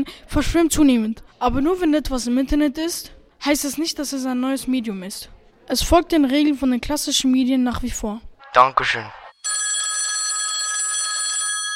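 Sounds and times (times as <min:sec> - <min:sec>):
speech: 0:00.0 - 0:09.2
telephone bell ringing with an incoming call: 0:09.4 - 0:11.7.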